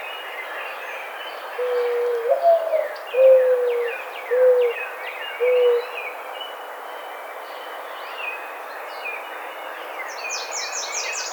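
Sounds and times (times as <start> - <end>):
mourning dove cooing: 1.6 - 4.8, 5.4 - 6.0.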